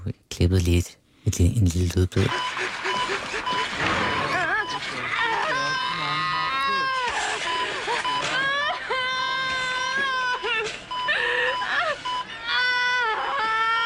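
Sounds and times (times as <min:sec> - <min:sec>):
speech: 0:00.1 - 0:02.6
laughter: 0:02.2 - 0:12.6
woman wailing and moaning loudly during childbirth: 0:04.1 - 0:07.2, 0:08.3 - 0:13.8.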